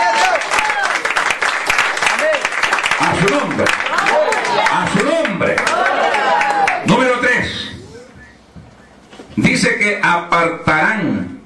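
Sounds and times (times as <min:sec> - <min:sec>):
voices calling out and cheering: 0:00.0 - 0:01.2, 0:02.1 - 0:08.2
audience loud sustained applause: 0:00.0 - 0:07.2
speech: 0:03.2 - 0:03.9, 0:09.8 - 0:11.3.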